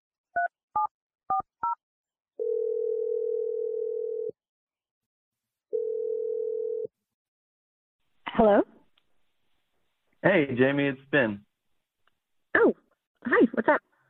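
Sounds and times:
telephone dial tone: 0:02.4 - 0:04.3, 0:05.7 - 0:06.9
speech: 0:08.4 - 0:08.7, 0:10.2 - 0:11.5, 0:12.6 - 0:13.9.

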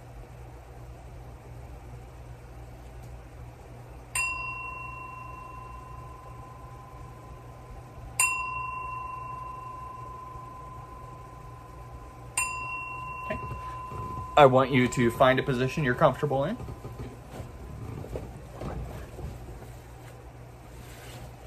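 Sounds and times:
soft steady hum: 0:00.0 - 0:21.4
meditation bell ringing: 0:04.1 - 0:17.2
speech: 0:14.4 - 0:16.7.

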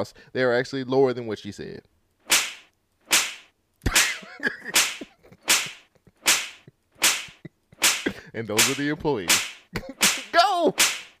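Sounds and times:
speech: 0:00.0 - 0:01.9, 0:04.4 - 0:04.8, 0:08.4 - 0:11.0
sharp slap sound effects: 0:02.2 - 0:11.1.

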